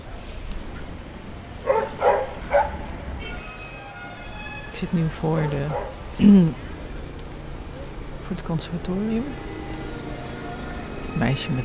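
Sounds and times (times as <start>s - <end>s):
low rumble of street noise outside a terrace: 0.0s - 11.6s
dog barks as dogs walk past in the street: 1.6s - 2.8s, 5.4s - 6.0s
speech: 4.8s - 6.7s, 8.3s - 9.5s, 11.2s - 11.6s.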